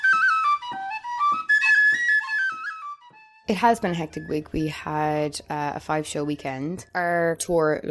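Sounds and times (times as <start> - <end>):
tin whistle playing a lively ornamented melody: 0.0 - 3.5
speech: 3.5 - 7.8.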